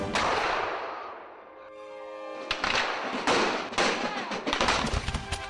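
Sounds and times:
colonial troops firing muskets in battle: 0.1s - 1.2s, 2.5s - 5.3s.

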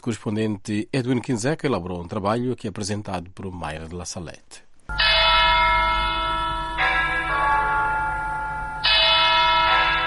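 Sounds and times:
speech: 0.0s - 5.1s
large cathedral church bells ringing: 4.9s - 10.0s.

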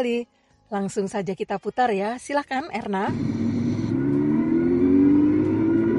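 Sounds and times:
speech: 0.0s - 3.5s
big motorcycle engines revving along a seafront: 3.1s - 5.9s.

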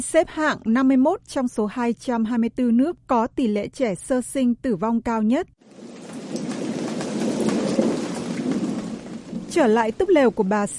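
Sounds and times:
speech: 0.0s - 6.0s, 9.5s - 10.7s
steady heavy rain: 5.6s - 10.3s
deep rolling rumble of thunder: 5.6s - 10.4s.

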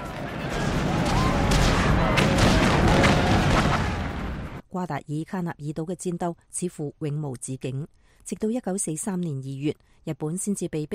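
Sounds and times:
booming artillery: 0.0s - 4.6s
descending whistles of falling bombs: 0.0s - 4.6s
heavy explosions: 0.0s - 4.6s
speech: 4.8s - 10.9s.

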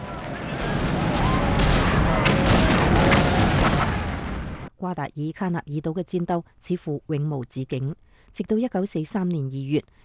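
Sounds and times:
deafening rumbling blasts: 0.0s - 4.7s
sharp cracks: 0.0s - 4.7s
faint falling whistles of bombs: 0.1s - 4.5s
artillery-like booms: 0.2s - 4.7s
speech: 4.8s - 10.0s.

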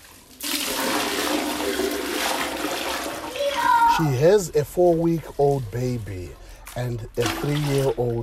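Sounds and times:
used bathwater poured from a bucket into a toilet bowl: 0.0s - 8.2s
speech: 4.0s - 8.2s.

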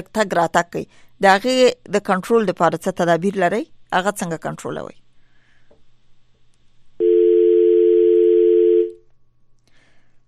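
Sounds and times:
speech: 0.0s - 5.0s
dial tone after a phone line is cut off: 7.0s - 9.0s.

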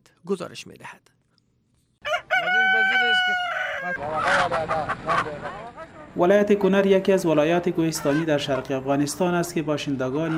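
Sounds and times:
speech: 0.2s - 1.2s, 2.4s - 10.3s
rooster crowing in Kunar, eastern Afghanistan: 2.0s - 4.2s
chickens clucking and squawking in Kunar, eastern Afghanistan: 2.1s - 6.2s, 7.8s - 8.9s.

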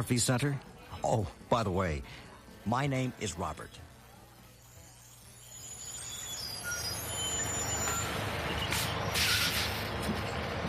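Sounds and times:
speech: 0.0s - 3.9s
bus engine rumble: 6.8s - 10.6s
bus air brakes hissing: 7.4s - 10.0s.

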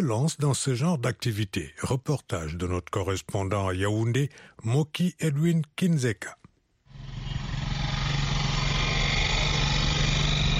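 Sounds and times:
speech: 0.0s - 6.4s
small motorcycle taxi engine running in Yaoundé: 6.9s - 10.5s.

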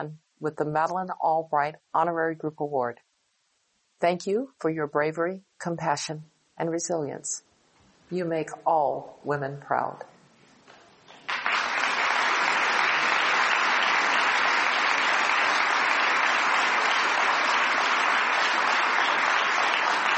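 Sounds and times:
speech: 0.0s - 3.1s, 4.0s - 7.5s, 8.1s - 10.1s
large audience applause: 11.2s - 20.1s.

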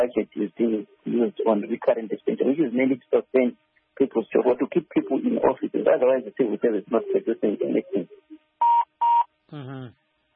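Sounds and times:
speech: 0.0s - 8.2s, 9.5s - 10.0s
voice fragment: 0.0s - 8.2s, 9.6s - 9.9s
electronic telephone line beeps: 8.6s - 9.3s.

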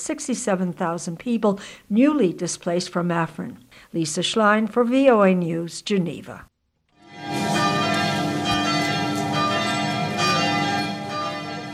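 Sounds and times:
speech: 0.0s - 6.5s
church bells pealing: 7.0s - 11.7s.

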